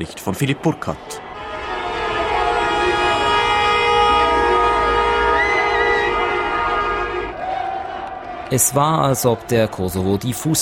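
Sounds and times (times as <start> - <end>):
speech: 0.0 - 1.2, 8.5 - 10.6
car horns honking in celebration on streets: 1.0 - 7.4.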